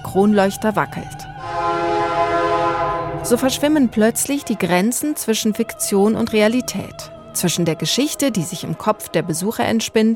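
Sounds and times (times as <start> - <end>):
train rail cars rumbling with a steady low roar: 0.0 - 9.0
speech: 0.1 - 1.9, 3.2 - 10.1
train horn sounding a sustained loud chord: 1.3 - 5.9.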